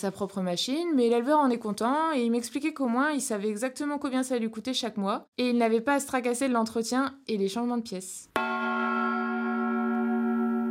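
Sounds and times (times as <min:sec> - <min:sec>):
speech: 0:00.0 - 0:08.6
gong ringing with a sustained metallic tone: 0:08.4 - 0:10.6.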